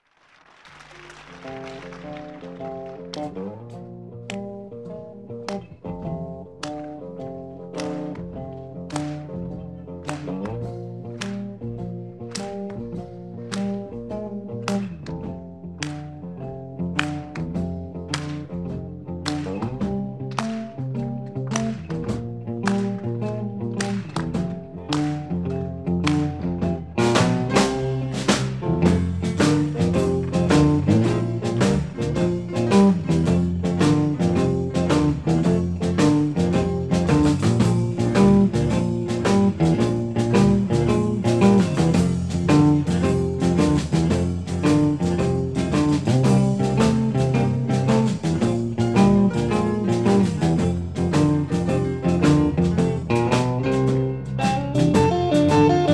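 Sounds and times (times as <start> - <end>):
honky tonk music: 0.8 - 55.9.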